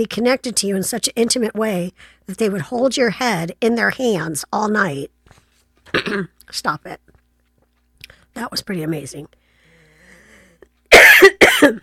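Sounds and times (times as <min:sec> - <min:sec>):
speech: 0:00.0 - 0:05.2, 0:05.9 - 0:07.1, 0:08.4 - 0:09.4, 0:11.2 - 0:11.8
person coughing: 0:05.9 - 0:06.3, 0:10.9 - 0:11.8.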